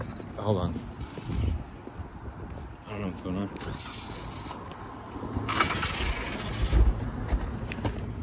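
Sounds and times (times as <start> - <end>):
speech: 0.4 - 1.0, 2.9 - 4.0
car engine sputtering and stalling with rough uneven low rumble: 3.6 - 4.6, 5.4 - 8.2.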